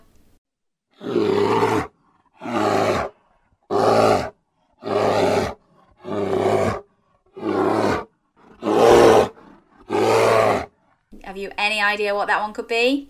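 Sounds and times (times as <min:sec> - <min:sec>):
grizzly bear growling and roaring: 0:00.9 - 0:11.1
speech: 0:11.4 - 0:13.0.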